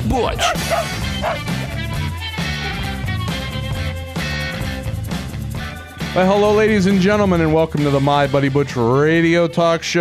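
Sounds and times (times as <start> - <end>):
music: 0.0 - 9.9
speech: 0.1 - 2.3, 6.1 - 9.9
dog barking and yipping: 0.4 - 1.8.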